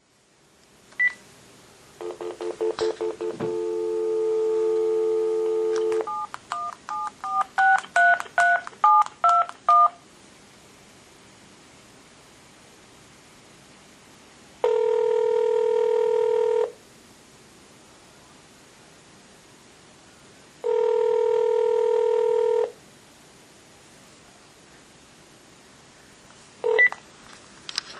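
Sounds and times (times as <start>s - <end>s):
phone call: 2.0s - 10.0s, 14.6s - 16.8s, 20.6s - 22.7s, 26.6s - 27.0s.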